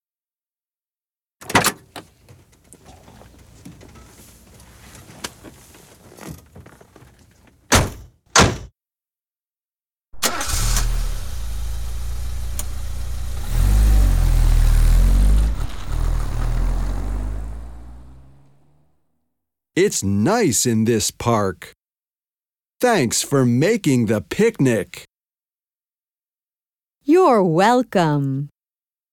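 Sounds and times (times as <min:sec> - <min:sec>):
car engine turning over and rumbling: 0:10.2 - 0:18.8
speech: 0:19.8 - 0:21.8, 0:22.8 - 0:25.1, 0:27.1 - 0:28.5.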